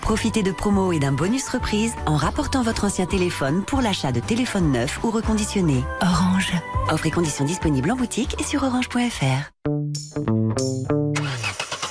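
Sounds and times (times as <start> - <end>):
speech: 0.1 - 9.8
car engine struggling to start in cold weather: 11.2 - 11.8.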